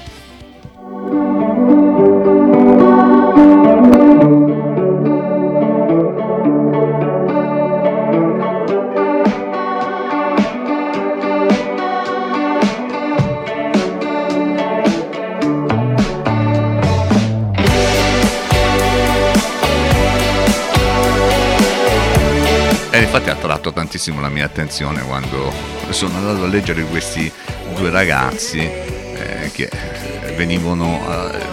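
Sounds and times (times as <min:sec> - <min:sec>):
rock song with effect-laden guitar, drums and distorted guitar on the radio: 0:00.0 - 0:31.5
speech: 0:24.1 - 0:31.5.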